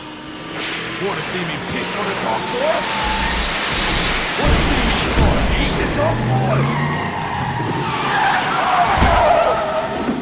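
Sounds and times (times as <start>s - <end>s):
DeLorean car tires squealing as it skids to a halt: 0.1s - 10.2s
speech: 1.0s - 3.3s, 6.0s - 6.9s
low DeLorean car engine rumble: 3.0s - 7.2s.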